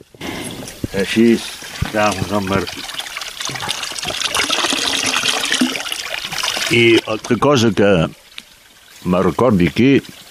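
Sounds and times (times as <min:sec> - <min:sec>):
water pouring from a drinking fountain: 0:00.0 - 0:10.2
speech: 0:00.9 - 0:02.9, 0:03.5 - 0:04.2, 0:06.7 - 0:08.2, 0:09.0 - 0:10.2.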